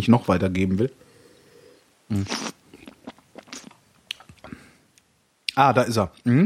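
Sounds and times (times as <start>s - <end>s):
speech: 0.0s - 1.0s, 2.1s - 2.6s, 5.6s - 6.4s
loud gulp as a mouthful is swallowed: 2.1s - 4.7s
soft wet clicks and smacking mouth noises: 2.3s - 4.5s.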